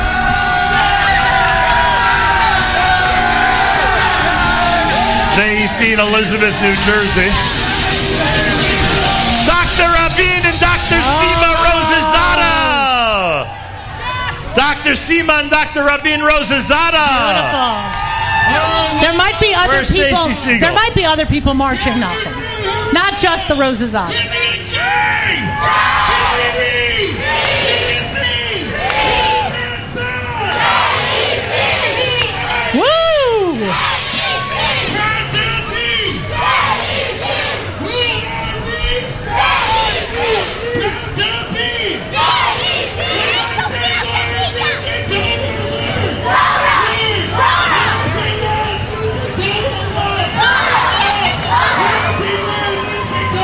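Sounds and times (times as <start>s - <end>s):
low rumble: 0.0s - 12.3s
large crowd screaming and cheering: 0.0s - 53.4s
speech: 5.5s - 8.2s, 14.6s - 24.4s.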